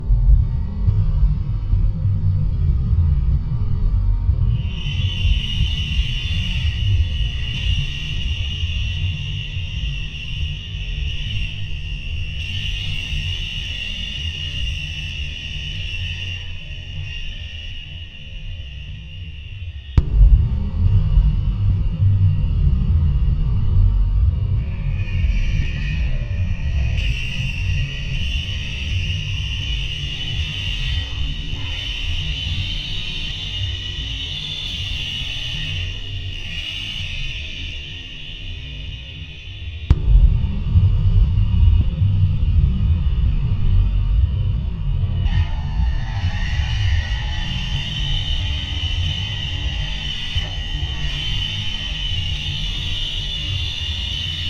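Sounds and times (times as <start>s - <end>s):
slow spooky drone bed: 0.0s - 54.4s
kick drum: 20.0s - 23.8s, 39.9s - 43.5s.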